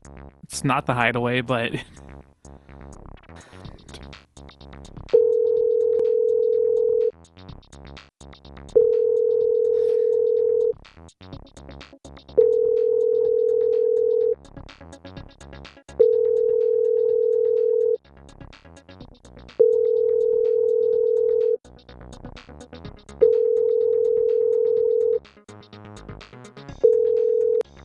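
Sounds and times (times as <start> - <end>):
speech: 0.5 - 2.1
ringback tone of an unanswered outgoing telephone call: 5.2 - 7.1, 8.8 - 10.7, 12.4 - 14.4, 16.0 - 18.0, 19.6 - 21.6, 23.2 - 25.2, 26.8 - 27.6.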